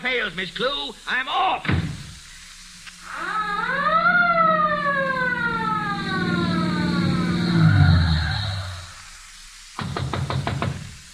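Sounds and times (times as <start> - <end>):
speech: 0.0 - 1.9
police siren wailing: 3.0 - 9.0
rapid sharp knocking: 9.8 - 10.9.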